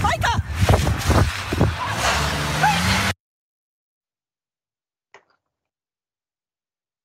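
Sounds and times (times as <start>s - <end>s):
car engine droning as it pulls away after hit-and-run collision: 0.9s - 3.2s.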